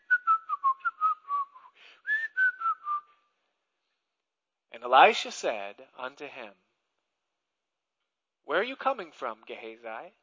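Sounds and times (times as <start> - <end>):
person whistling a light wandering tune: 0.0 - 3.1
speech: 4.8 - 6.7, 8.5 - 10.2.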